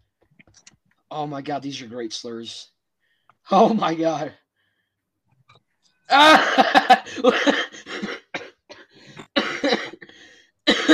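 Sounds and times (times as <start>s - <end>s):
speech: 1.1s - 2.7s, 3.5s - 4.4s, 6.1s - 7.6s
person coughing: 6.2s - 10.1s, 10.7s - 10.9s.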